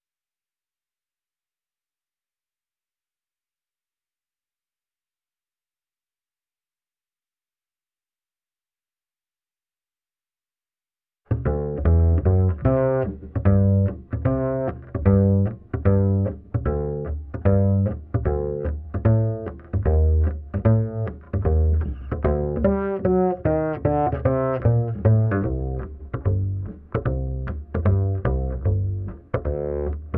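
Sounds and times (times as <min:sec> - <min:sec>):
ragtime bass line: 0:11.3 - 0:30.1.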